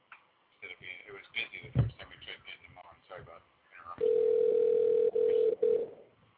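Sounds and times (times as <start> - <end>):
speech: 1.1 - 4.6
telephone line ringing during a call attempt: 4.0 - 6.0.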